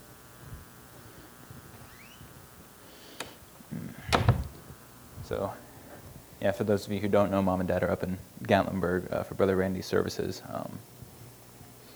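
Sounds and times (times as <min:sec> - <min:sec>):
low room hum: 0:00.0 - 0:11.9
door being pulled shut: 0:03.2 - 0:04.8
speech: 0:05.3 - 0:05.7, 0:06.4 - 0:10.9.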